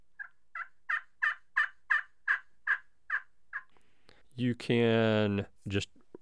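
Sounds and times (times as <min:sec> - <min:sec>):
slate turkey call with open box sound chamber yelping: 0:00.2 - 0:03.7
speech: 0:04.4 - 0:05.9.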